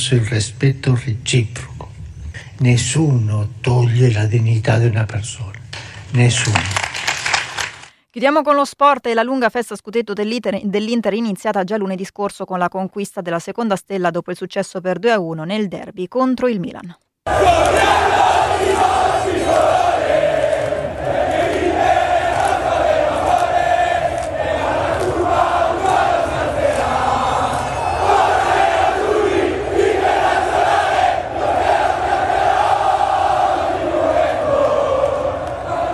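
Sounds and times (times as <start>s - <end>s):
speech: 0.0s - 1.8s, 2.4s - 6.8s, 8.2s - 19.8s
huge crowd of football fans roaring and chanting: 17.3s - 35.9s.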